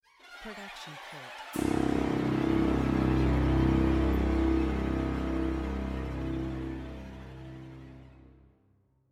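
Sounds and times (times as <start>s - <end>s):
screeching strings: 0.1s - 8.2s.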